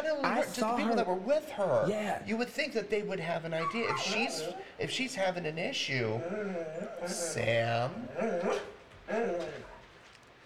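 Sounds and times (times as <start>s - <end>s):
speech: 0.0s - 9.7s
dog barking with whiny yowls: 3.6s - 4.7s.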